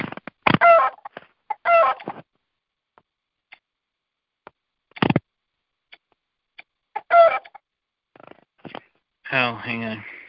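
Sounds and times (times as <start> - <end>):
chicken clucking as it is brought into a chicken coop: 0.5 - 2.1, 6.9 - 7.6
speech: 9.6 - 10.2.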